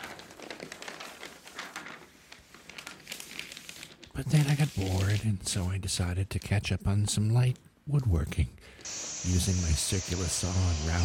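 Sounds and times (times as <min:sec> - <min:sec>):
newspaper pages rustling as someone reads: 0:00.0 - 0:05.6
speech: 0:04.2 - 0:11.0.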